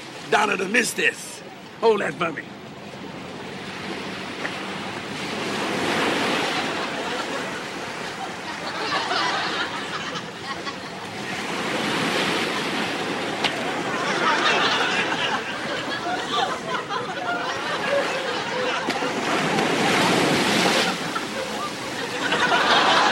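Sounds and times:
ocean waves surging and breaking where people are surfing: 0.0 - 23.1
speech: 0.3 - 3.1
laughter: 6.2 - 23.1.

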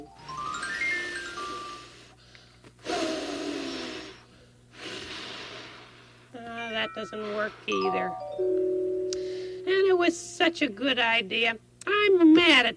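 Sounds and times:
person blowing air: 0.4 - 2.2, 2.8 - 6.2
speech: 6.8 - 8.8, 10.0 - 12.7.

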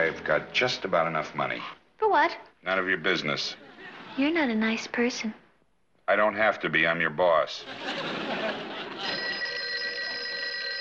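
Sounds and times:
speech: 0.1 - 5.4, 6.1 - 9.3
laughter: 3.6 - 4.2, 7.6 - 10.2
telephone ringing with a metallic bell: 8.8 - 10.7.

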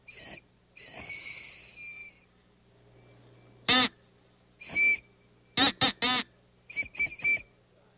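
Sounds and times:
crow call whistle caws: 0.1 - 2.3, 5.6 - 7.5
toy trolley whistle tooting: 0.1 - 2.3, 3.7 - 4.0, 4.6 - 7.5.

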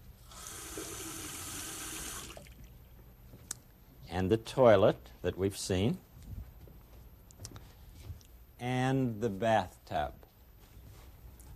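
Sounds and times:
water running from a bathroom sink faucet down the drain: 0.3 - 2.6
speech: 4.2 - 6.0, 8.6 - 10.2.

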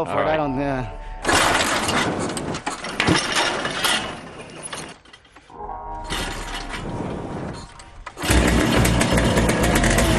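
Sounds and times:
speech: 0.0 - 1.1
harsh mechanical clatter of golfing machine: 1.2 - 5.0, 7.8 - 10.1
golfing machine's small motor sputtering, starting and running: 8.2 - 10.1.

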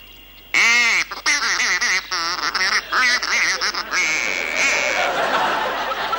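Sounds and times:
person on a duck hunt mimicking duck mating call: 0.6 - 5.0
laughter: 2.5 - 6.1.

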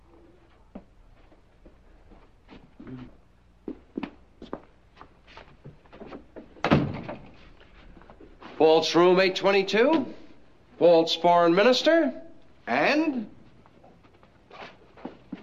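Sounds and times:
shuffling steps: 0.0 - 6.6, 7.2 - 9.0, 13.4 - 15.4
loud thump: 6.6 - 7.3
door being opened: 6.6 - 7.4
speech: 8.6 - 10.2, 10.8 - 13.3.

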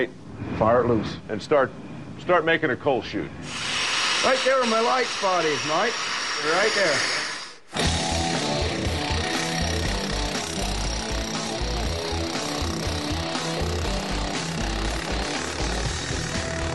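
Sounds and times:
speech: 0.0 - 7.8
rock drill boring holes into Pottsville conglomerate rock with water fed into the hole: 3.5 - 16.7.

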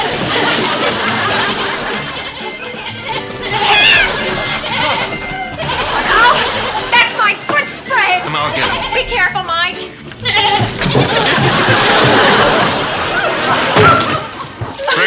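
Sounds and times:
laughter: 0.0 - 15.0
overlapping voices and chatter: 0.0 - 15.0
goat in a bathtub bleating: 2.1 - 6.8, 7.9 - 9.5, 10.1 - 11.2.

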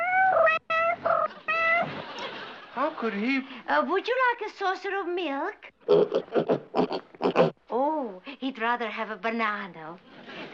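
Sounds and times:
person imitating a cat's meow: 0.0 - 1.9
speech: 2.8 - 6.7, 7.8 - 10.5.

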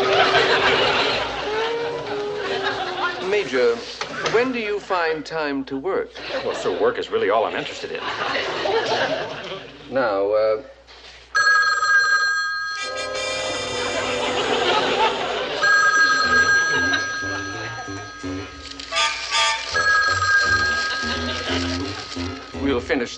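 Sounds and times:
laughter: 0.0 - 3.3, 6.1 - 6.9, 7.8 - 9.9, 13.6 - 18.6, 20.4 - 23.1
speech: 3.5 - 10.8, 22.7 - 23.1
telephone bells ringing in an office: 11.4 - 14.0, 14.6 - 19.1, 19.7 - 22.2.

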